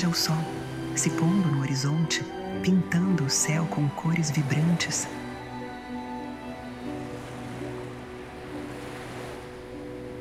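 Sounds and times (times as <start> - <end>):
speech: 0.0 - 5.3
gentle ocean waves washing onto a sandy shore: 0.0 - 10.1.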